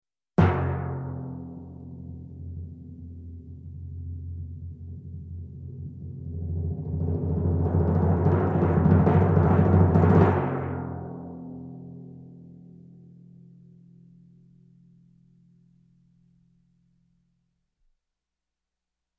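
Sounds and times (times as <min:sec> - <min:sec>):
concert timpani roll: 0:06.0 - 0:11.2.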